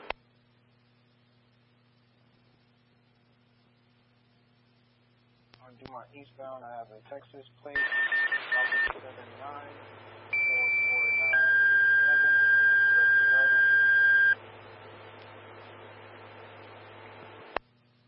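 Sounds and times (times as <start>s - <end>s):
faint radio chatter: 5.6s - 13.9s
speech: 5.8s - 10.2s
fire dispatch alert tones over a radio channel: 7.8s - 8.9s, 10.4s - 14.4s.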